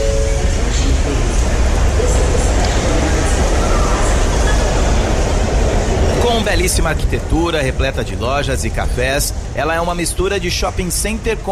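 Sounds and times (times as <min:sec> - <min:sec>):
faint murmur of voices: 0:00.0 - 0:11.4
rail noise of trains idling and moving in a busy station: 0:00.0 - 0:11.4
speech: 0:06.5 - 0:11.4.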